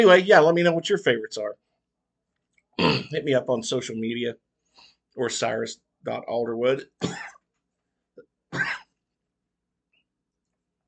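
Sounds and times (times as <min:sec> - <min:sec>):
speech: 0:00.0 - 0:01.6, 0:02.8 - 0:07.4
coughing with gravelly rasp: 0:02.8 - 0:03.2, 0:07.0 - 0:07.4, 0:08.5 - 0:09.0
throat clearing: 0:02.8 - 0:03.2, 0:07.0 - 0:07.4, 0:08.5 - 0:09.0.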